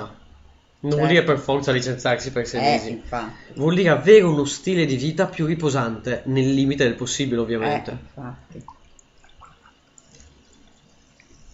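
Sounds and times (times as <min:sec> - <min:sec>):
low hiss: 0:00.0 - 0:11.5
speech: 0:00.8 - 0:08.8
faint liquid sloshing of water: 0:08.4 - 0:11.5.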